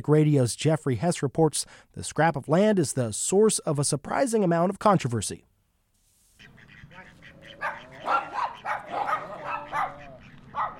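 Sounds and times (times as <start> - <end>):
speech: 0.0 - 5.5
open-air noise with people: 0.0 - 10.7
dog barking and yipping in a city park: 7.0 - 10.7.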